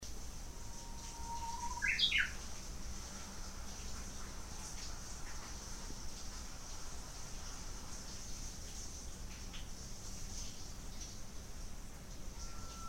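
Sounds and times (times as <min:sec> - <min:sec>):
background hum: 0:00.0 - 0:12.8
Japanese bush warbler song: 0:00.6 - 0:02.4.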